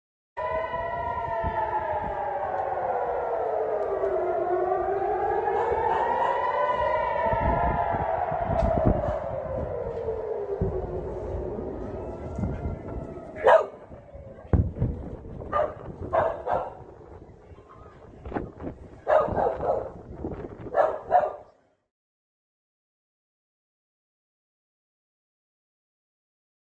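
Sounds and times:
war alarm siren in Tehran: 0.4s - 17.5s, 18.5s - 21.3s.

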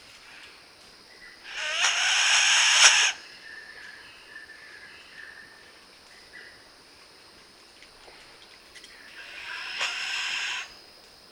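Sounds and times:
kagu breathy hiss: 1.5s - 3.2s, 9.1s - 10.8s.

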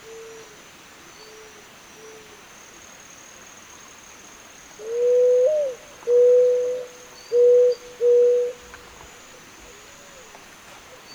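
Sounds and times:
Zenaida dove cooing: 4.8s - 8.6s.

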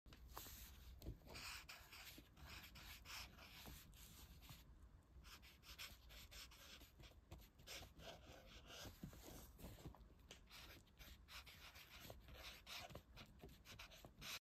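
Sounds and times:
marker on paper: 0.3s - 4.6s, 5.2s - 9.5s, 10.3s - 14.3s.

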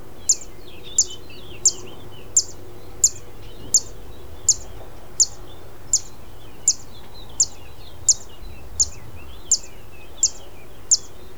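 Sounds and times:
Zitting cisticola calling with crisp high-pitched ticks: 0.2s - 11.2s.

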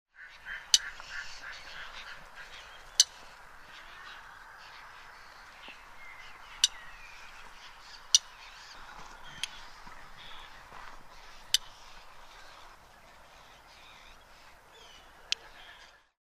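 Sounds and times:
Black-tailed nativehen: 0.1s - 16.2s.

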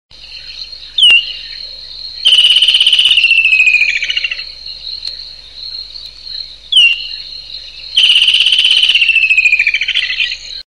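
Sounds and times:
steady high whine: 0.2s - 10.6s
kingfisher calls with sharp note and falling harsh trill: 2.2s - 4.4s, 8.0s - 10.2s.

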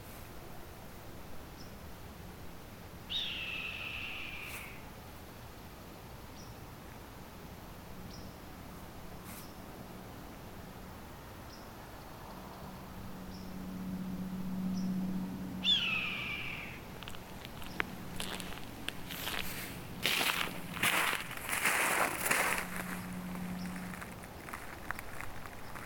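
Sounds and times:
low hum and hiss: 0.0s - 25.8s
Red-tailed hawk screaming: 15.6s - 16.8s.

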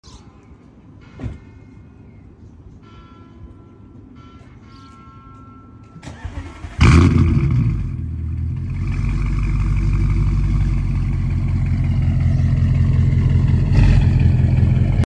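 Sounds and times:
Audi exhaust: 6.4s - 15.0s.

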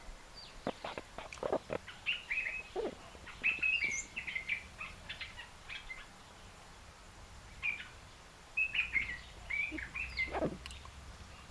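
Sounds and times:
African red-eyed bulbul calling: 0.6s - 5.4s, 8.6s - 10.8s.

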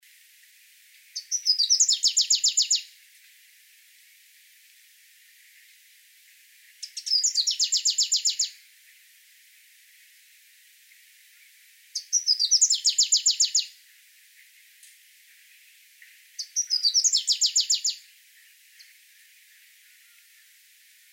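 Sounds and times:
variable sunbird singing: 1.1s - 3.0s, 6.8s - 8.6s, 11.4s - 13.8s, 15.3s - 20.6s.

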